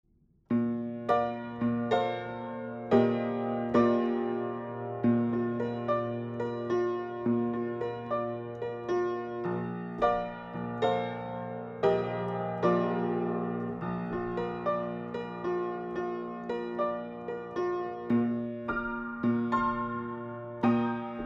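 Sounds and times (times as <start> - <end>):
upright piano: 0.5 - 21.2.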